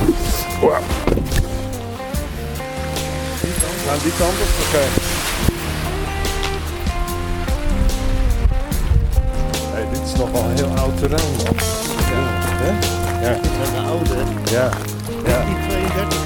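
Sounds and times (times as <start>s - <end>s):
steady rain falling outdoors: 0.0s - 16.2s
speech: 4.0s - 5.6s, 11.0s - 15.0s.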